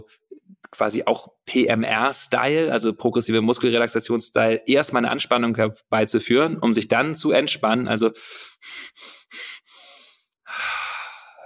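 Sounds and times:
speech: 0:00.0 - 0:09.5
deep energizing breathing in and out: 0:08.2 - 0:11.4.

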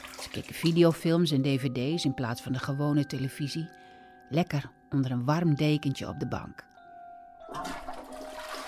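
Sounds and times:
speech: 0:00.4 - 0:06.7
toilet cistern flushing: 0:07.5 - 0:08.6.

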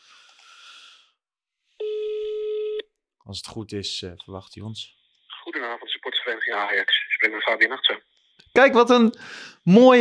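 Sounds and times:
telephone ringback tone while placing call: 0:01.8 - 0:02.8
speech: 0:03.3 - 0:10.0.

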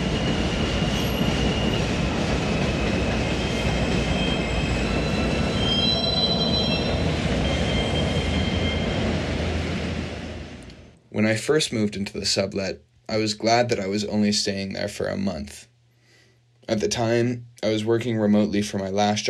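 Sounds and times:
shrill metallic squeals of wheels on track: 0:00.0 - 0:09.4
elevated subway train rumbling past on tracks: 0:00.0 - 0:11.0
speech: 0:11.3 - 0:15.7, 0:16.7 - 0:19.2.

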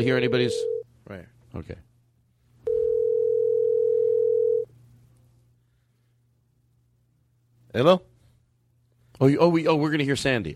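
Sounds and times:
speech: 0:00.0 - 0:01.9, 0:07.7 - 0:08.1, 0:09.2 - 0:10.5
faint low hum: 0:00.0 - 0:10.5
telephone dial tone while placing a call: 0:02.7 - 0:04.7.

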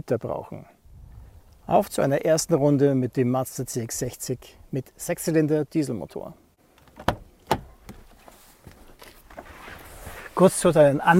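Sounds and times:
speech: 0:00.0 - 0:00.8, 0:01.7 - 0:06.4, 0:10.4 - 0:11.1
car rear door latch and handle clunks: 0:06.8 - 0:08.0.

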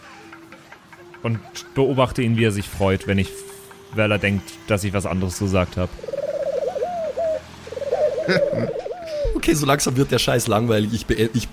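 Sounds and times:
speech: 0:01.2 - 0:06.2, 0:08.3 - 0:11.5
person imitating a pigeon's coo: 0:06.0 - 0:09.4
laughter: 0:08.3 - 0:09.5.

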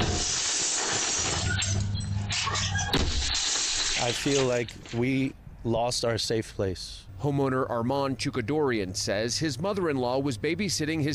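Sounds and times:
window glass shattering under pickaxe blows in Pasadena: 0:00.0 - 0:04.5
constant hissing background: 0:00.0 - 0:11.1
speech: 0:04.0 - 0:11.1.

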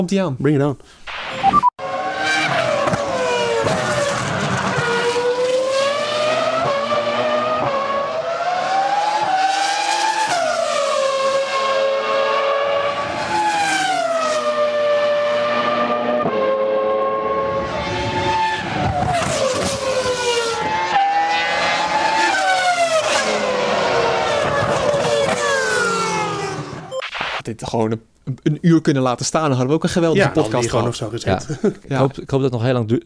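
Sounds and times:
speech: 0:00.0 - 0:01.7, 0:27.7 - 0:33.0
V10 engine of a 2005 R25 Formula One car screaming during a demonstration run: 0:01.8 - 0:26.9
laughter: 0:31.3 - 0:32.2.

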